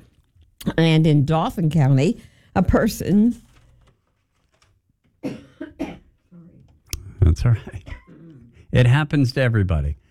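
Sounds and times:
speech: 0:00.7 - 0:03.5, 0:07.4 - 0:07.9, 0:08.7 - 0:10.0
radio presenter coughing on air during a news report: 0:05.2 - 0:06.2, 0:07.8 - 0:08.6.

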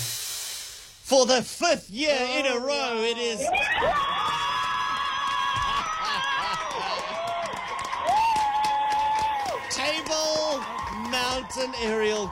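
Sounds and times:
speech: 0:01.1 - 0:04.2, 0:09.9 - 0:12.3
crowd cheering and whooping: 0:02.8 - 0:12.3.

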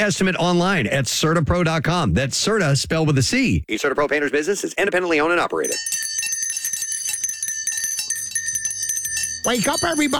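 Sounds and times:
speech: 0:00.0 - 0:06.1, 0:09.4 - 0:10.1
bright high bells ringing: 0:05.7 - 0:10.1.

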